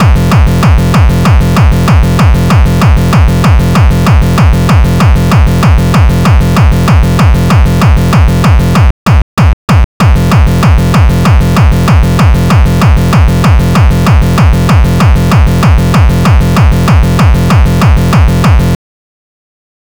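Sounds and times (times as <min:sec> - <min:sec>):
kick drum pattern: 0:00.0 - 0:18.8.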